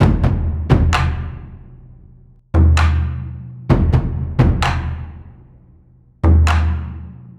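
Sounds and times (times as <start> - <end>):
cinematic war drums for trailer loops: 0.0 - 7.2.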